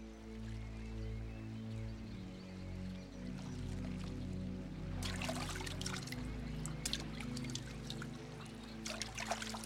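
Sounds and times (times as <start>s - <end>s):
low steady drone: 0.0s - 9.6s
water trickling in a stream: 3.2s - 9.6s.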